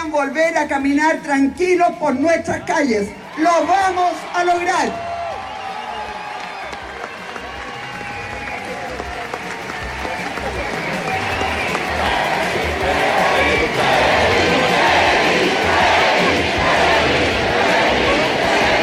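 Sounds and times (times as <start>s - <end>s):
speech: 0.1s - 5.1s
crowd cheering at a political campaign rally in a stadium: 3.0s - 18.8s
clapping: 5.3s - 13.3s
crowd chanting at a political campaign rally: 10.7s - 18.8s.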